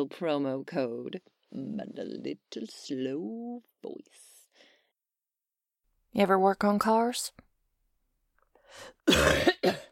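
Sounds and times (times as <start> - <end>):
speech: 0.0 - 4.3, 6.1 - 7.4, 8.7 - 9.9
person coughing: 9.0 - 9.9.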